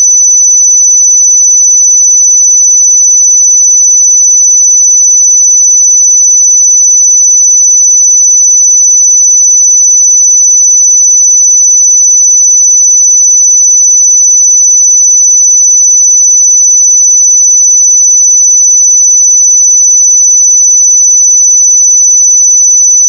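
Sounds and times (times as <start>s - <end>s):
pure sine tone at 5995 Hz: 0.0s - 23.0s.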